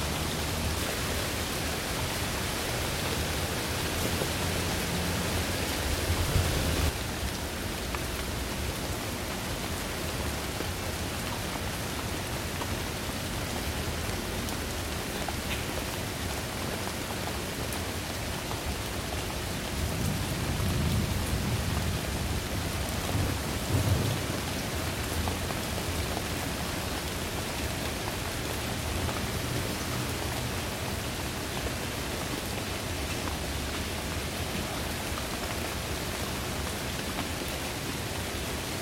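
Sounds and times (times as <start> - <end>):
steady dense rain: 0.0 - 38.8
low rumble of thunder: 5.8 - 7.0.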